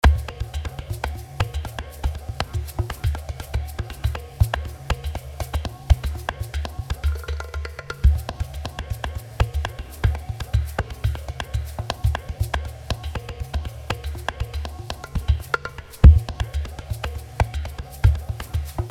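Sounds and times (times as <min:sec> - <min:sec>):
percussion: 0:00.0 - 0:18.8.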